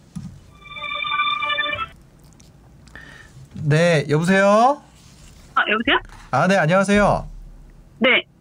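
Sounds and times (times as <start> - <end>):
phone ringing tone while a broadcast connects to a caller: 0.5 - 2.0
speech: 3.6 - 4.9, 5.6 - 7.3, 8.0 - 8.3.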